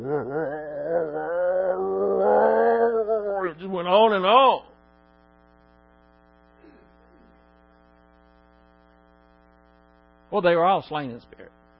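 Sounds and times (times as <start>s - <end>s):
person at a gathering roaring low and growling: 0.0s - 3.6s
speech: 3.9s - 4.7s, 10.4s - 11.6s.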